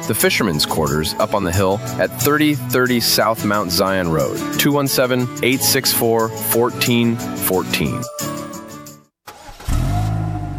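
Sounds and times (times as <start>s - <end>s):
speech: 0.1s - 8.3s
car engine starting and running: 9.3s - 10.5s.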